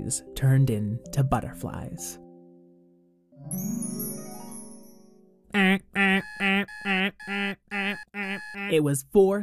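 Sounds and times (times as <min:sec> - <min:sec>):
speech: 0:00.0 - 0:02.2, 0:05.5 - 0:09.4
chiming jingly intro: 0:03.4 - 0:05.4.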